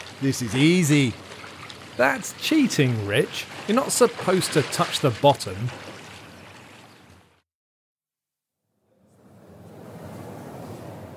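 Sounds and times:
water splashing during swimming exercise: 0.0 - 7.4
speech: 0.2 - 1.3, 2.0 - 6.0.

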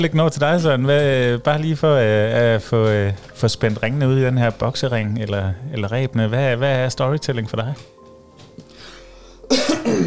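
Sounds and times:
speech: 0.0 - 8.0
harsh coughs: 9.5 - 10.0.

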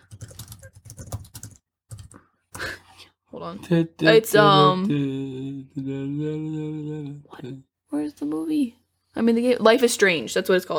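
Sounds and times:
rapid typing on a computer keyboard: 0.0 - 2.2
speech: 3.4 - 10.7.

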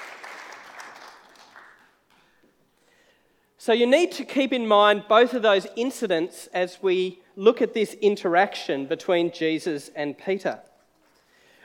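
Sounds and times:
room full of people applauding: 0.0 - 2.4
speech: 3.6 - 10.7.

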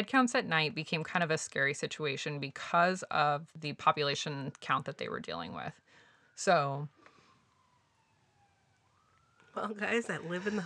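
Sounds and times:
speech: 0.0 - 7.0, 9.6 - 10.6
police car siren wailing outside: 5.6 - 10.6.

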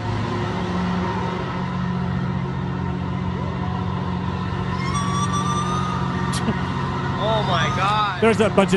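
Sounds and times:
low rumble of noise: 0.0 - 8.7
whale call: 4.6 - 8.2
speech: 8.2 - 8.7.

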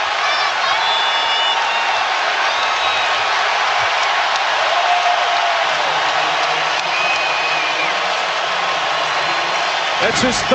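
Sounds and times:
big arena crowd roaring and cheering after a block: 0.0 - 10.5
faint whistles: 0.8 - 3.2, 6.9 - 8.0
speech: 10.1 - 10.5.

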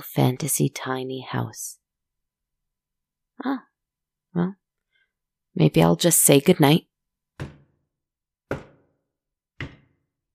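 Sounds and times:
speech: 0.0 - 1.8, 3.4 - 3.7, 4.4 - 4.6, 5.6 - 7.6
firm knocks on a door: 7.4 - 7.8, 8.5 - 9.0, 9.6 - 10.0.

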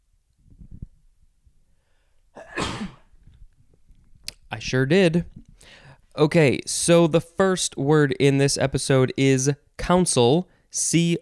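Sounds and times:
quiet breathing: 1.6 - 2.4, 5.4 - 6.2
person sneezing: 2.4 - 3.1
speech: 4.6 - 11.2.

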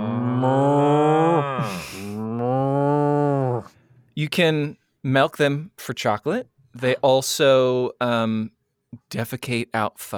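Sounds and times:
cows mooing: 0.0 - 3.8
speech: 0.4 - 0.8, 4.2 - 10.1.

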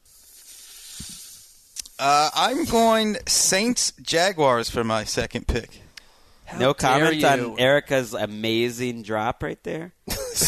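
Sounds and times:
snake hissing: 0.0 - 1.8
speech: 2.0 - 5.8, 6.5 - 10.4.

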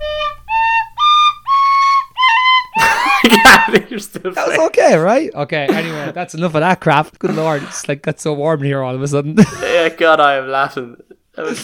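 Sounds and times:
tin whistle playing: 0.0 - 2.8
laughter: 2.8 - 4.8, 9.4 - 10.1
speech: 3.3 - 11.6.

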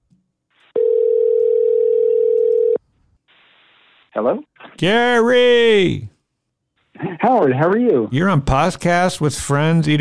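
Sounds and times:
telephone dial tone: 0.8 - 2.8
speech: 4.2 - 6.1, 7.1 - 10.0.

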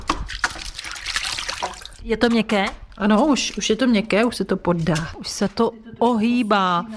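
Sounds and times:
hand splashing in a basin of water with soaking rattan cane: 0.0 - 2.0
speech: 2.0 - 6.9.

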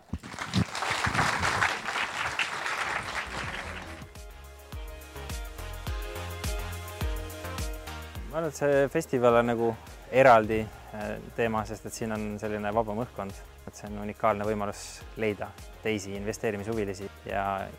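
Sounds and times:
crowd applause: 0.0 - 4.1
upbeat music with a steady thumping beat: 3.2 - 17.7
speech: 8.4 - 17.7.

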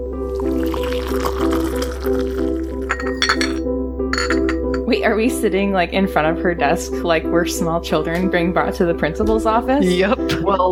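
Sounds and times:
tea pouring into a cup: 0.2 - 3.6, 4.2 - 4.8
china clinking: 0.4 - 4.9
speech: 5.0 - 10.7.

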